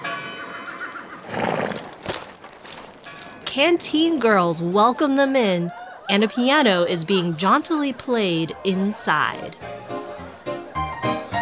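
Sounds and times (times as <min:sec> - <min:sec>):
faint hoof clops: 0:00.6 - 0:03.5
horse hitched to a post outside a saloon whinnying: 0:00.7 - 0:02.2
speech: 0:03.6 - 0:09.8.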